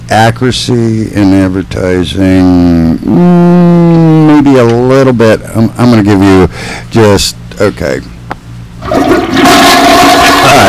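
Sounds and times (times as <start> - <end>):
speech: 0.1 - 8.2
toilet flushing: 8.8 - 10.6.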